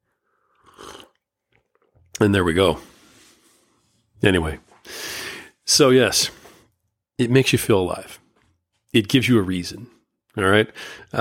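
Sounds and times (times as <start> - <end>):
slurping sip from a hot drink: 0.4 - 1.3
speech: 2.2 - 2.9, 4.2 - 5.1, 5.7 - 6.4, 7.2 - 8.2, 8.9 - 11.2.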